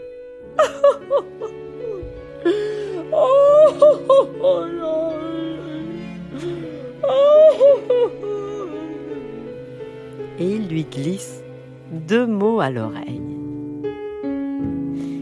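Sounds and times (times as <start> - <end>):
woman crying and wailing: 0.5 - 9.6
speech: 0.6 - 1.6, 10.4 - 13.3.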